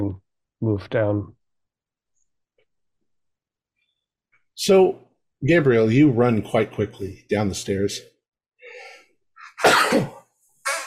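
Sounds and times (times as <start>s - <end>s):
speech: 0.0s - 1.4s, 4.6s - 8.1s, 9.6s - 10.2s
breathy intake gasps: 8.6s - 9.6s
person acting out a sneeze during a tabletop horror role-playing game: 9.4s - 10.8s.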